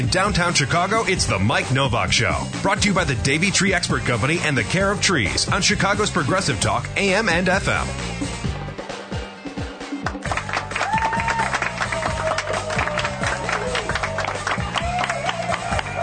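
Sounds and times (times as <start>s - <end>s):
speech: 0.0s - 8.4s
music playing: 0.0s - 16.0s
live audience applauding at an outdoor pavilion in Chicago: 10.0s - 16.0s.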